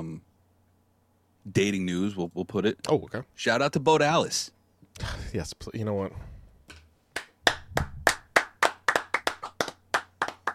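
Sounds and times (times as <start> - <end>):
speech: 1.5 - 6.3
hand claps from one or two people: 6.7 - 10.5.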